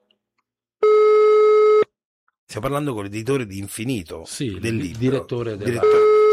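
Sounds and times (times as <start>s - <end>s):
electronic telephone ringback tone during outgoing call: 0.8s - 1.9s, 5.8s - 6.3s
speech: 2.5s - 6.1s.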